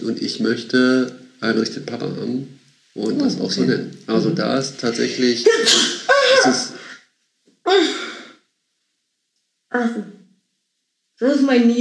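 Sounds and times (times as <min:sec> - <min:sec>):
speech: 0:00.0 - 0:06.7, 0:07.7 - 0:07.9, 0:11.2 - 0:11.7
person sneezing: 0:05.5 - 0:07.0.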